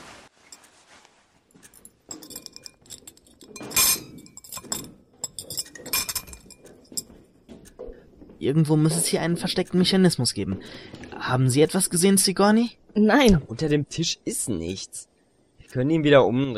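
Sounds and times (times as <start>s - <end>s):
ceramic dishes and glassware clinking while being cleared: 0.5s - 7.8s
speech: 8.4s - 15.1s, 15.7s - 16.5s.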